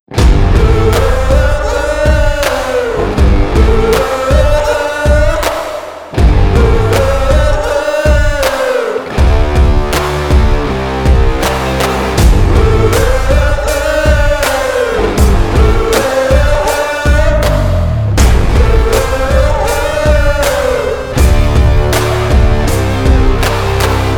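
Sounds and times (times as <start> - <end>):
urban dirty blues guitar: 0.1 - 5.5, 6.1 - 24.1.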